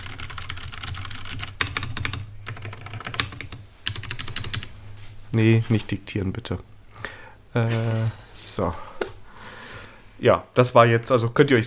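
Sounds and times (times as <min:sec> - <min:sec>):
typing on a mechanical keyboard with brown switches: 0:00.0 - 0:04.7
low constant hum: 0:00.0 - 0:11.6
speech: 0:05.3 - 0:06.7, 0:07.6 - 0:08.9, 0:10.2 - 0:11.6.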